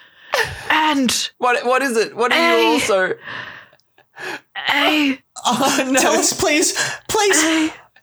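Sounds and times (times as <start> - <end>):
speech: 0.9 - 3.6, 4.2 - 7.8
voice acting out a dramatic dying gasp: 5.4 - 7.9.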